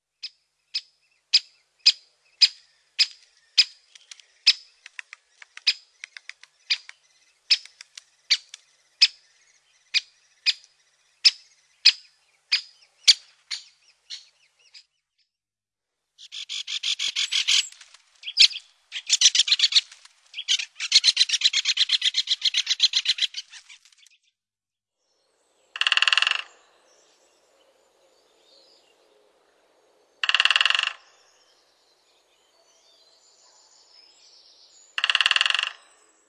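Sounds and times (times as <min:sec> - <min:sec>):
great spotted woodpecker: 0:00.8 - 0:14.9, 0:16.2 - 0:24.2, 0:25.7 - 0:26.7, 0:30.2 - 0:31.3, 0:34.8 - 0:36.1.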